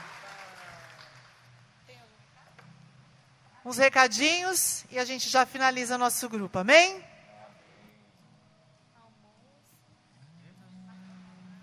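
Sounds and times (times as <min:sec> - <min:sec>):
crowd at a religious group gathering applauding: 0:00.0 - 0:01.5
speech: 0:03.6 - 0:07.1.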